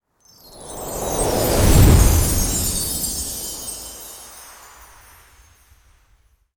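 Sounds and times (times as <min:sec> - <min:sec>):
slow magical Christmas whoosh transition: 0:00.4 - 0:05.7.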